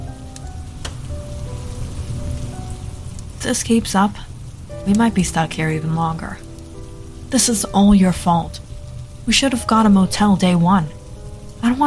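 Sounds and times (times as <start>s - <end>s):
distant thunder: 0.0s - 11.8s
heavy rain pounding against windows: 0.0s - 11.8s
speech: 3.4s - 6.5s, 7.3s - 8.6s, 9.3s - 11.0s, 11.6s - 11.8s.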